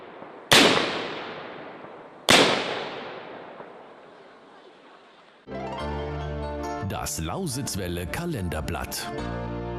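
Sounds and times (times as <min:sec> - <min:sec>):
ceremonial black-powder salute cannon blasts: 0:00.0 - 0:04.9
musical jingle: 0:05.5 - 0:09.1
speech: 0:06.9 - 0:09.6.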